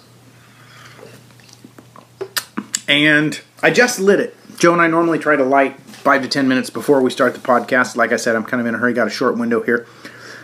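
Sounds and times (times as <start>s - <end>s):
quiet steady hum: 0.0s - 10.4s
sipping and swallowing water: 0.6s - 2.9s
wet mouth clicks: 1.0s - 2.9s
speech: 2.9s - 10.2s.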